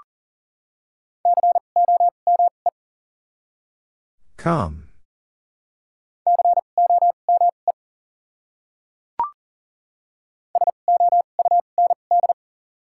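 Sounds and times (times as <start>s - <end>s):
Morse code beeps at a single steady pitch: 1.3s - 2.5s, 6.3s - 7.6s, 10.6s - 12.4s
speech: 4.4s - 4.8s.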